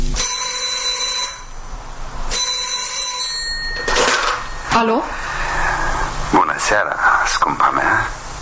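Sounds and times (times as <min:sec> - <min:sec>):
old-fashioned telephone bell ringing: 0:00.2 - 0:01.6, 0:02.3 - 0:05.5
speech: 0:04.8 - 0:05.2, 0:06.3 - 0:08.2.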